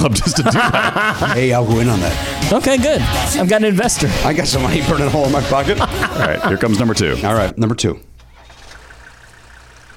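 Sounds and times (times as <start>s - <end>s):
laughter: 0.0s - 2.4s, 4.6s - 7.5s
speech: 0.0s - 8.1s
car engine idling with a low rumble: 8.4s - 9.9s.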